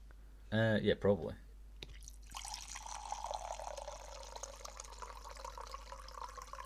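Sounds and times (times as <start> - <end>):
speech: 0.5 - 1.4
wine pouring from a box tap into a container: 1.8 - 6.6.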